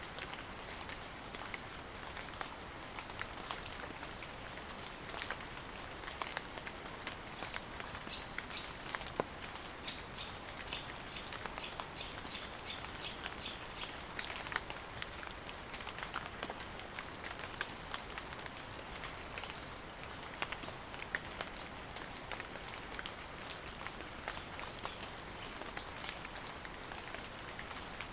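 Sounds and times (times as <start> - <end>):
rain falling through hazel and oak woodland pattering on leaves: 0.0 - 28.1.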